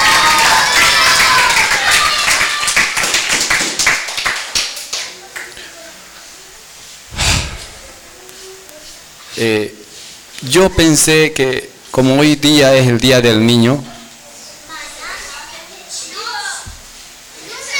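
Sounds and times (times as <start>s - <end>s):
audience applause at a children's birthday celebration: 0.0s - 5.5s
speech: 9.4s - 9.8s, 10.4s - 13.9s.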